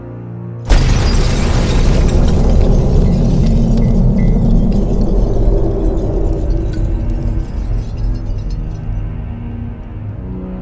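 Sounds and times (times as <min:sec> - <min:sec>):
car explosion blast: 0:00.7 - 0:07.7
heavy roaring rumble and debris noise after a car explosion: 0:00.7 - 0:10.6.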